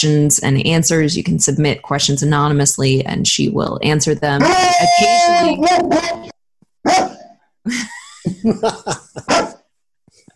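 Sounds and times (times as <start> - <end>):
speech: 0.0 - 9.5
laughter: 4.4 - 5.6, 7.7 - 9.5
dog barking: 5.6 - 7.4, 9.2 - 9.6.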